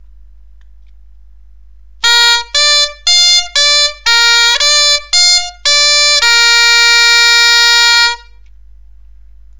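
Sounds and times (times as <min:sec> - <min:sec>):
bombarde playing B D F arpeggio: 0:02.0 - 0:08.3.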